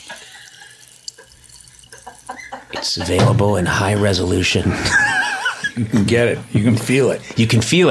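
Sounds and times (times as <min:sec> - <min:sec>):
sparkling water poured into a glass: 0:00.0 - 0:02.7
speech: 0:02.7 - 0:05.1, 0:05.8 - 0:07.8
laughter: 0:03.9 - 0:06.0.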